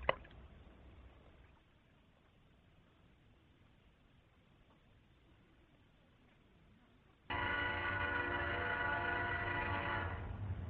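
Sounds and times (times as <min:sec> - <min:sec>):
train horn blast: 0:07.3 - 0:10.5.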